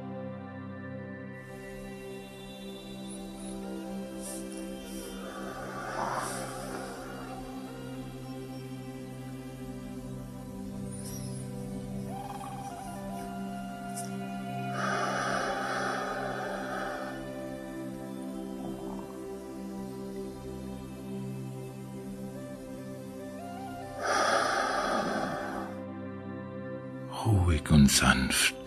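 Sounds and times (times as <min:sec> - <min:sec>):
soft steady musical drone: 0:00.0 - 0:28.6
deep inhalations and full exhalations in a guided breathing exercise: 0:03.2 - 0:08.5, 0:14.4 - 0:19.3, 0:23.5 - 0:25.8
speech: 0:27.6 - 0:28.6.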